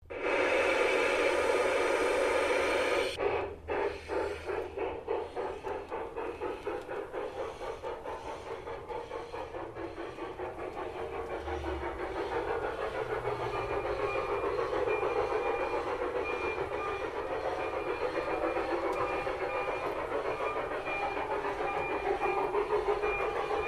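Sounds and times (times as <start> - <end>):
antique toy steam train: 0.0 - 23.6.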